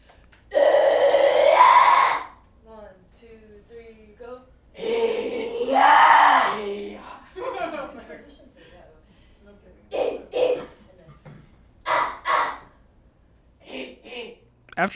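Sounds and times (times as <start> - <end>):
growled shouts: 0.5 - 2.4, 4.8 - 7.0, 11.8 - 12.7
harsh raspy screamed metal vocals in choir class: 0.5 - 2.4, 4.8 - 7.0
laughter: 7.0 - 8.6.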